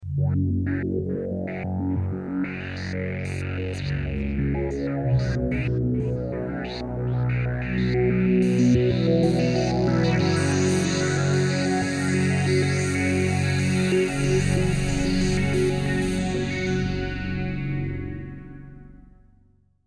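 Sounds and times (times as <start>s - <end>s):
Sequential Prophet '08 synthesizer factory program: 0.4s - 19.2s.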